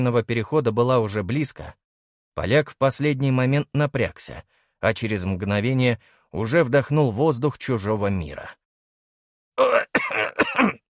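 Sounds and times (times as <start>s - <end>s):
speech: 0.0s - 1.8s, 2.4s - 8.6s, 9.6s - 10.8s
man coughing: 9.6s - 10.8s.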